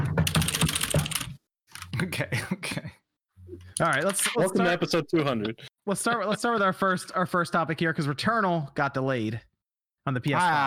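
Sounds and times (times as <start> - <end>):
clicky computer keyboard typing: 0.0 - 1.9
speech: 2.0 - 2.8, 3.8 - 10.6.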